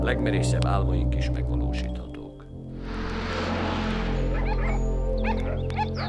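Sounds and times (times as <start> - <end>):
speech: 0.1 - 2.1
broadband noise: 2.6 - 5.2
steady low rumble: 2.6 - 5.2
dog barking and yipping: 4.4 - 6.0.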